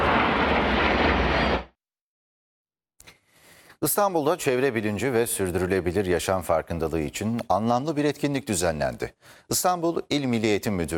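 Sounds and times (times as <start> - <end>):
aerobatic jet aircraft roaring during a display over Konya: 0.0 - 1.7
speech: 3.8 - 10.9.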